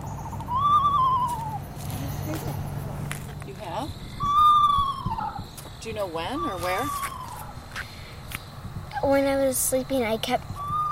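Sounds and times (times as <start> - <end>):
screech owl wavering whistled call: 0.0 - 2.2, 3.8 - 8.1, 10.5 - 10.8
speech: 5.9 - 7.1, 9.0 - 10.5.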